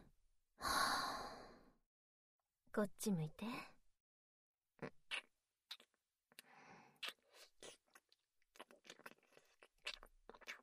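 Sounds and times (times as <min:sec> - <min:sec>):
person breathing out during a breathing exercise: 0:00.6 - 0:01.7
speech: 0:02.8 - 0:03.8.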